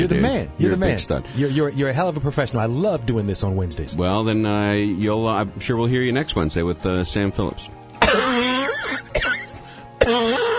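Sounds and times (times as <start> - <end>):
speech: 0.0 - 7.8, 10.1 - 10.5
person coughing and choking on something caught in the throat: 8.0 - 10.5.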